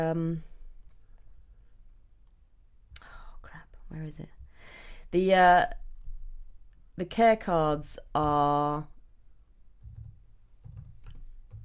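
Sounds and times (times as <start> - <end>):
speech: 0.0 - 0.5, 3.9 - 4.4, 5.1 - 5.8, 7.0 - 8.9
soft keystrokes on a computer keyboard while searching online: 9.8 - 11.6.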